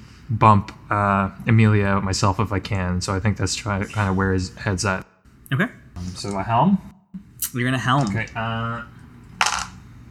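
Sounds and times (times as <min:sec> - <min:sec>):
speech: 0:00.3 - 0:09.0
dice tumbling across a hard tabletop: 0:09.4 - 0:09.8.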